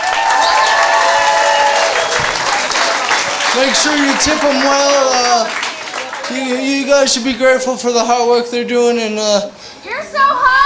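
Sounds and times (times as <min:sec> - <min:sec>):
sustained audience applause: 0:00.0 - 0:07.2
faint crowd noise: 0:00.0 - 0:10.6
speech: 0:03.6 - 0:05.6, 0:06.3 - 0:10.6.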